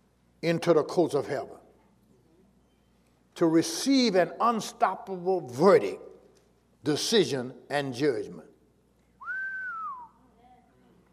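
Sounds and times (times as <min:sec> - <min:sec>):
speech: 0:00.4 - 0:01.6, 0:03.4 - 0:06.1, 0:06.8 - 0:08.5
person whistling in church: 0:09.2 - 0:10.2.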